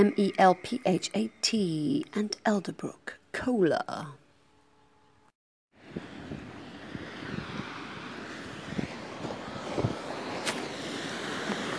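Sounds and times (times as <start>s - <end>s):
speech: 0.0s - 4.2s
wind at a beach roaring across the microphone: 5.8s - 11.7s.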